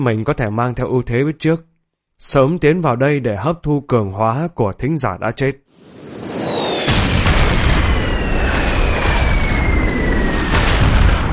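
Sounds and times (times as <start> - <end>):
speech: 0.0 - 5.9
explosion of a black sphere releasing radiation: 5.8 - 11.3
thin descending whine: 5.8 - 11.3.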